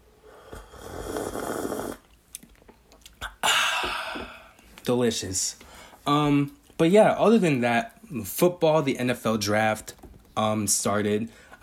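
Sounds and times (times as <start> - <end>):
person sipping water and tea: 0.2 - 2.1
speech: 4.9 - 11.6.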